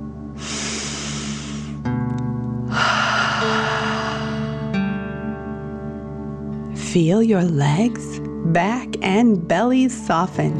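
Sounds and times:
deep breath in and blown out through the mouth: 0:00.4 - 0:01.9, 0:02.7 - 0:04.9
speech: 0:06.9 - 0:10.5.

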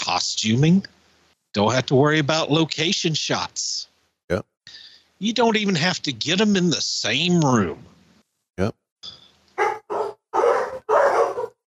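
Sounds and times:
speech: 0:00.1 - 0:07.9, 0:08.6 - 0:09.2
dog barking: 0:09.6 - 0:11.6.

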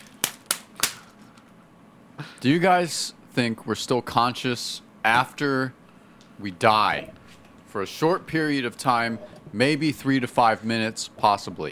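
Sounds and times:
hand slapping a bag: 0:00.0 - 0:01.1
quiet hum: 0:01.0 - 0:11.7
speech: 0:02.2 - 0:05.8, 0:06.4 - 0:11.7.

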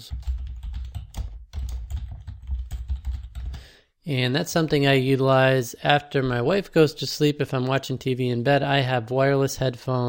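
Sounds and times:
speech: 0:00.0 - 0:00.3, 0:04.0 - 0:10.0
fast typing on a computer keyboard entering a search term: 0:00.0 - 0:03.7.

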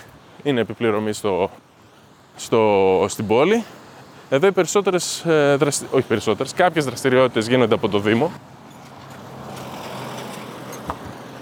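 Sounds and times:
speech: 0:00.4 - 0:01.7, 0:02.4 - 0:08.6
car passing by outdoors: 0:08.3 - 0:11.3.

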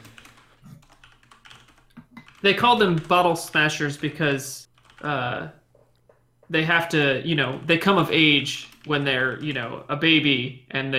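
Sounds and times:
typing on a computer keyboard: 0:00.0 - 0:04.1, 0:04.7 - 0:05.1, 0:08.5 - 0:09.7
speech: 0:02.4 - 0:05.6, 0:06.5 - 0:10.9.

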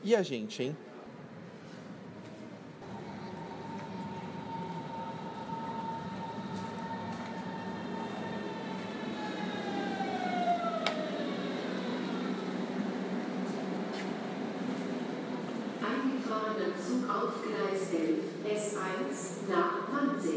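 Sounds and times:
speech: 0:00.0 - 0:00.9, 0:17.1 - 0:20.3
S1 train rumble pulling into a station platform: 0:01.2 - 0:18.0
train brakes sliding downward as it slows: 0:02.8 - 0:14.0.

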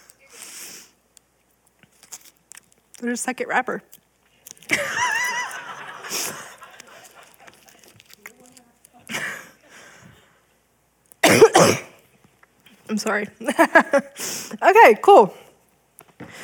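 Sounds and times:
speech: 0:03.0 - 0:04.0, 0:13.0 - 0:15.4
laughter: 0:04.6 - 0:07.9
person coughing in a coughing fit: 0:11.2 - 0:12.0.

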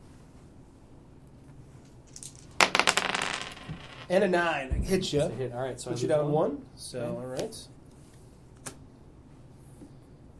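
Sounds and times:
dice thrown onto a hard surface clattering: 0:02.1 - 0:04.1
speech: 0:04.1 - 0:07.8.

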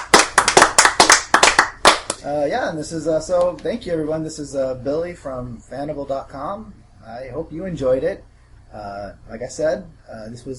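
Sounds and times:
small group applauding at the close of a game session: 0:00.0 - 0:02.2
speech: 0:02.2 - 0:10.5.

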